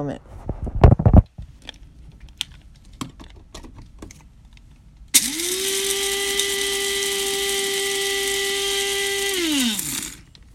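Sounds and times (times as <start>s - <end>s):
speech: 0.0s - 0.4s
coffee grinder running: 5.2s - 10.3s.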